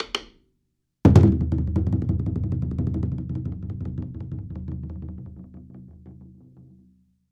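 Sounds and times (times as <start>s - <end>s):
chu daiko drum fill roll with sticks: 1.1s - 6.6s.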